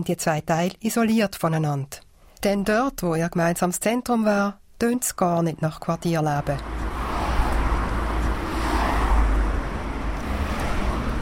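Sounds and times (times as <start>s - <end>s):
speech: 0.0s - 6.8s
dense road traffic roaring at a busy motorway junction over a railway bridge: 6.1s - 11.1s.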